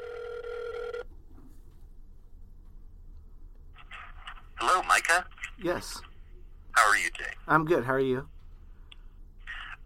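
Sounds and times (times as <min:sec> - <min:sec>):
telephone ringing: 0:00.0 - 0:01.1
speech: 0:04.7 - 0:06.1, 0:07.0 - 0:08.3.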